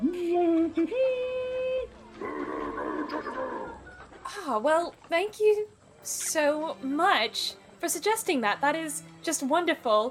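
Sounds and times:
speech: 0.7s - 1.4s, 4.4s - 10.1s
distant horse whinnying at a joust in a town arena: 2.2s - 4.1s.

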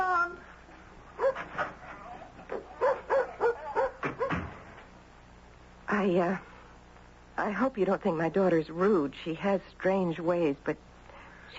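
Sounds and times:
dog barking and yipping: 1.2s - 4.5s
speech: 6.0s - 6.5s, 7.4s - 10.9s.

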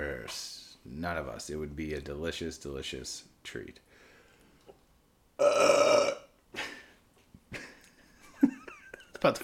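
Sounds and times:
speech: 0.3s - 3.9s, 5.4s - 6.0s, 9.2s - 9.4s
shorter softer belching gulps: 5.4s - 6.3s
loud drawn-out burp: 5.4s - 6.4s.

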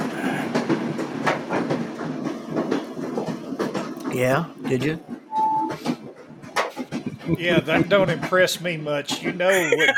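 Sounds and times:
train wheels clickety-clack on railroad tracks: 0.0s - 9.9s
speech: 4.2s - 5.1s, 7.3s - 9.9s
laughter: 9.2s - 9.9s.

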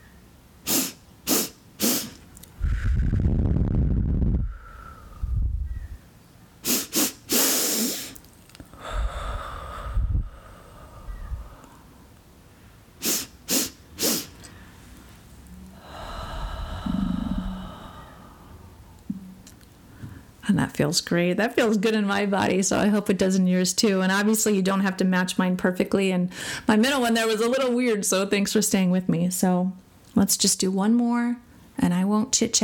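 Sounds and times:
quick sharp sniffs through the nose: 0.7s - 2.2s, 6.6s - 8.2s, 13.0s - 14.4s
long breathy exhale out the mouth: 0.7s - 3.3s, 4.3s - 5.8s, 6.6s - 12.0s, 15.7s - 19.0s
speech: 20.6s - 32.6s.

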